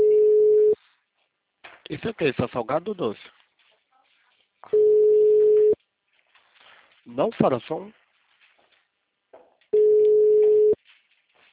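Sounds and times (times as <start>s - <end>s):
telephone busy signal from an engaged number: 0.0s - 0.8s, 4.8s - 5.8s, 9.8s - 10.8s
speech: 1.9s - 3.4s, 7.1s - 8.0s.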